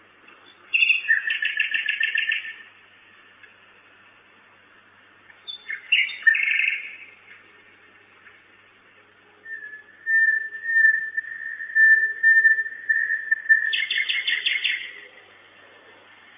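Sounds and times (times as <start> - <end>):
common nightingale singing at a nest box at night: 0.3 - 2.8, 5.3 - 7.6, 9.4 - 15.2.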